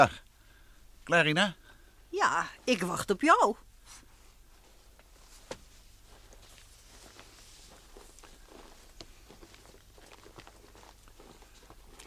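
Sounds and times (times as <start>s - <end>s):
speech: 0.0s - 0.2s, 1.1s - 4.0s
low steady hum: 0.0s - 12.0s
footsteps crunching through dry snow on an evening walk: 3.9s - 12.0s.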